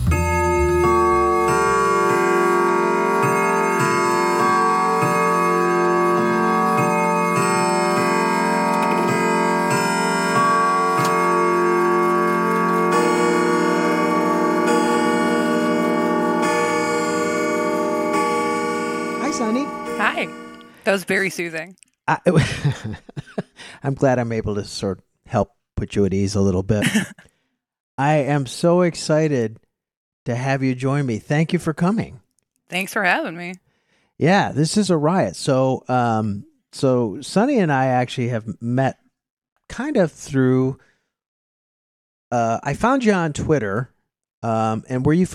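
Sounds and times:
clock ticking: 0.1s - 21.1s
clock bell chimes striking the hour: 0.1s - 21.5s
speech: 20.9s - 23.3s, 23.8s - 27.3s, 28.0s - 29.7s, 30.3s - 33.7s, 34.2s - 39.0s, 39.7s - 40.9s, 42.3s - 45.3s
laughter: 22.3s - 23.6s, 26.8s - 27.2s.

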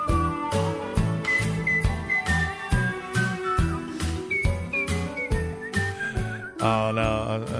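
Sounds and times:
instrumental backing with rhythmic bass and chords: 0.0s - 7.5s
person whistling a cheerful melody: 1.2s - 6.8s
speech: 6.6s - 7.5s.

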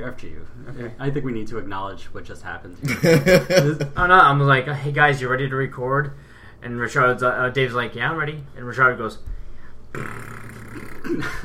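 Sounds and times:
speech: 0.0s - 9.3s, 9.9s - 11.4s
laughter: 2.8s - 4.0s
voice imitating a fart: 9.9s - 11.4s.

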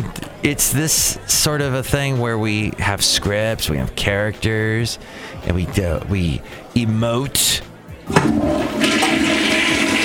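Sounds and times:
speech: 0.4s - 8.9s
toilet flushing: 8.1s - 10.0s.

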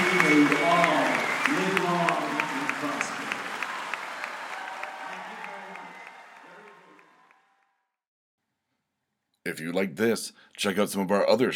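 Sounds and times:
crowd applauding: 0.0s - 7.8s
speech: 9.6s - 11.5s.

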